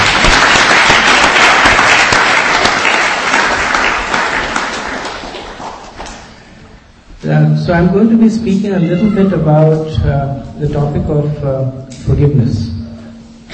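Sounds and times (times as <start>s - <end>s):
room full of people applauding: 0.0s - 6.3s
speech: 7.7s - 12.7s.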